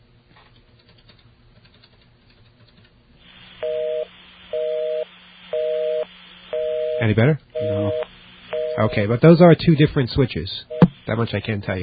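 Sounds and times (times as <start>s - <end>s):
faint telephone-line hiss: 3.3s - 9.2s
DTMF keypad tones as a phone number is dialed: 5.6s - 9.0s
speech: 7.0s - 8.0s, 8.8s - 11.8s.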